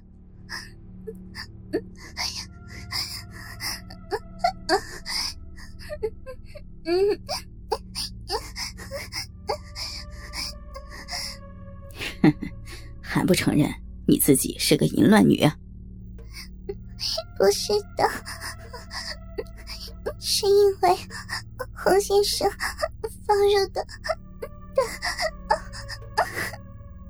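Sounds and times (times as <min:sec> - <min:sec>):
breathy gasping and panting: 0:01.8 - 0:06.6, 0:07.2 - 0:11.4, 0:17.0 - 0:24.2, 0:24.8 - 0:26.6
short whimpering moans: 0:01.8 - 0:11.4, 0:16.4 - 0:24.2, 0:24.8 - 0:26.6
speech: 0:13.3 - 0:15.6, 0:17.4 - 0:18.3, 0:20.4 - 0:21.2, 0:21.8 - 0:22.7, 0:23.3 - 0:24.1.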